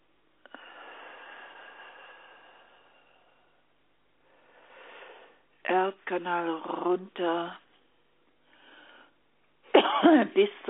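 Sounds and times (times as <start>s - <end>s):
raspy wheezy breath drawn in: 0.5s - 3.6s, 4.2s - 5.5s
speech: 5.7s - 7.6s, 10.0s - 10.6s
single loud harsh cough: 9.8s - 10.4s.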